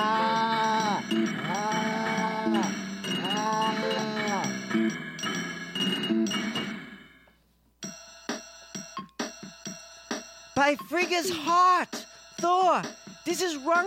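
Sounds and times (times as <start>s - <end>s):
stampede of cattle bawling and lowing in a rail yard: 0.0s - 4.8s
sharp ringing bell-like chimes: 2.5s - 6.9s
speech: 10.6s - 13.8s.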